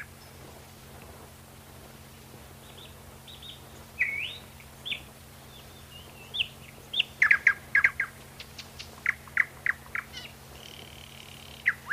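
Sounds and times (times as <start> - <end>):
nightingale singing: 2.6 - 11.9.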